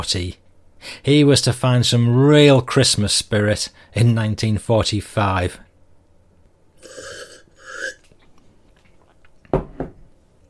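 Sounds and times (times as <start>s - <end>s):
speech: 0.0s - 5.6s
person slurping a glass of Normandy Calvados: 6.8s - 8.2s
person swallowing Calvados: 6.8s - 8.3s.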